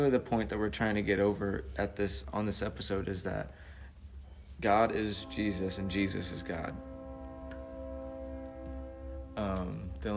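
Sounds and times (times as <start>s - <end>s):
speech: 0.0s - 3.7s, 4.6s - 6.9s, 9.4s - 10.1s
train horn blowing: 4.6s - 10.1s.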